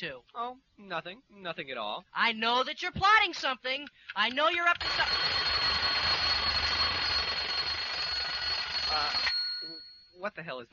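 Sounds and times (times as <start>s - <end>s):
speech: 0.0s - 5.8s, 8.9s - 10.7s
alarm clock ringing: 4.8s - 10.2s.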